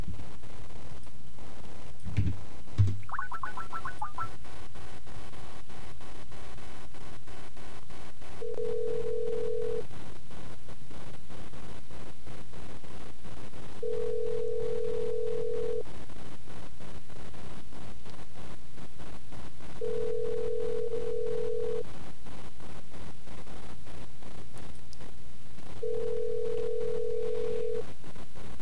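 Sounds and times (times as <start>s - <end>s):
noise: 0.0s - 28.6s
ringback tone of a telephone call to a payphone: 8.4s - 9.8s, 13.8s - 15.8s, 19.8s - 21.8s, 25.8s - 27.8s.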